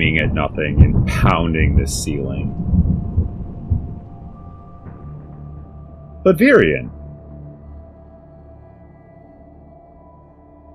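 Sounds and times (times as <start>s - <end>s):
thunder cracking and rumbling through a storm: 0.0s - 7.6s
speech: 0.1s - 2.8s, 6.2s - 7.0s.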